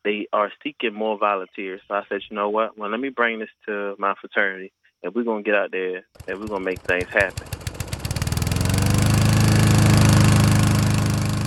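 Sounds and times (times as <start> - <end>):
speech: 0.0 - 7.6
small gas engine of a lawnmower running: 6.2 - 11.4.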